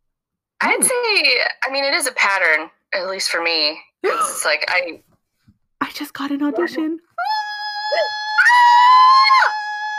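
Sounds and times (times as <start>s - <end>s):
speech: 0.7s - 5.1s, 5.8s - 7.1s
startled dog yelping and howling: 7.2s - 9.9s.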